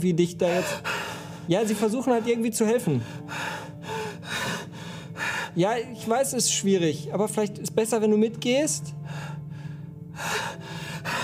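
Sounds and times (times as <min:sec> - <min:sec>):
speech: 0:00.0 - 0:00.9, 0:01.5 - 0:03.4, 0:05.6 - 0:09.0
woman breathing hard, almost hyperventilating under a mask: 0:00.5 - 0:01.5, 0:03.0 - 0:05.6, 0:09.0 - 0:11.2.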